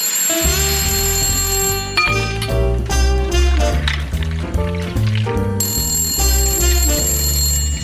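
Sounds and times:
telephone ringing with a bright bell-like electronic tone: 0.0s - 2.5s, 5.6s - 7.8s
pulsing musical pattern of lower notes: 0.6s - 6.9s.

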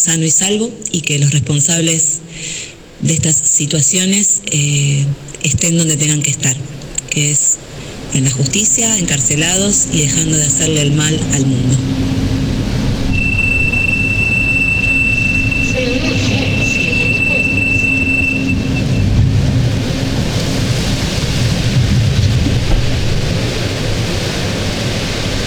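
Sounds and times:
speech: 0.0s - 12.1s
metro train riding through a tunnel in Santiago, Chile: 6.0s - 25.4s
metro train wheels squealing: 7.6s - 25.4s.

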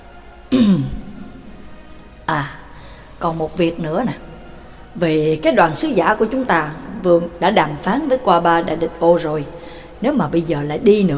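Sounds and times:
throat clearing: 0.5s - 1.1s
speech: 2.3s - 2.6s, 3.2s - 4.3s, 5.0s - 11.1s.

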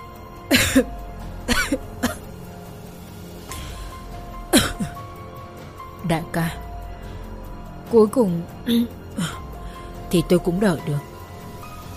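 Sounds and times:
old man coughing: 0.5s - 0.9s, 1.5s - 2.3s, 4.5s - 5.0s
speech: 0.5s - 1.0s, 6.1s - 6.6s, 7.9s - 9.4s, 10.1s - 11.1s.

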